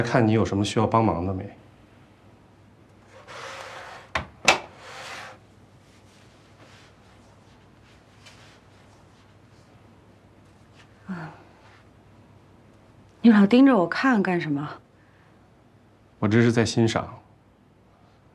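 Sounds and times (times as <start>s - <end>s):
speech: 0.0s - 1.6s, 13.2s - 14.8s, 16.2s - 17.2s
quiet hum: 0.0s - 18.3s
man shutting a door with two sharp wooden knocks: 4.1s - 4.7s
brief rustling: 4.8s - 11.9s.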